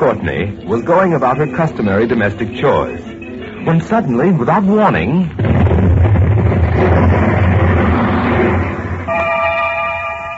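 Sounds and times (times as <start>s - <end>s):
speech: 0.0s - 5.9s
loud deep explosion: 5.4s - 9.1s
steady horn-like tone: 9.1s - 10.3s.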